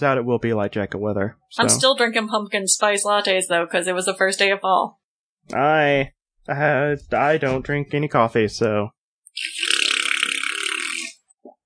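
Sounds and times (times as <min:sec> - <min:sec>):
speech: 0:00.0 - 0:09.6
fart noise made with the mouth: 0:09.4 - 0:11.3.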